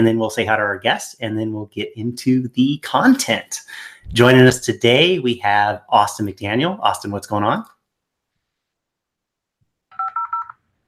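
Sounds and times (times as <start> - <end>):
speech: 0.0 - 7.7
telephone touch-tone dialing beeps: 9.9 - 10.6.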